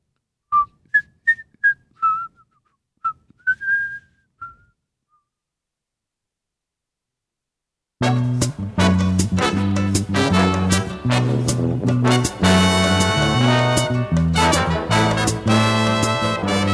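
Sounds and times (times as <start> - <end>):
man whistling a light waltz tune solo while walking: 0.5 - 5.3
full music: 8.0 - 16.7.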